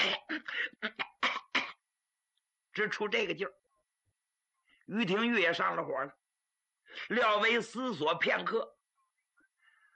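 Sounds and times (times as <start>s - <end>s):
person imitating a fit of coughing: 0.0s - 1.9s
speech: 2.8s - 3.6s, 4.9s - 6.2s, 6.9s - 8.8s.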